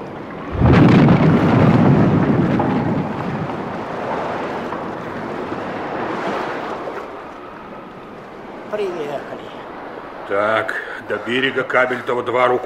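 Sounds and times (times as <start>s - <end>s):
churning water in a storm: 0.0s - 12.6s
storm wind roaring: 0.0s - 12.6s
schooner with a dead engine slamming aground on a shoal in a storm: 0.2s - 9.0s
speech: 10.3s - 12.6s.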